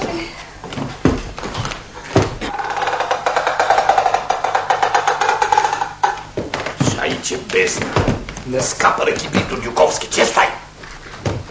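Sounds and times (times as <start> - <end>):
bathroom door hinge creaking: 2.2 - 7.1
speech: 7.5 - 10.6.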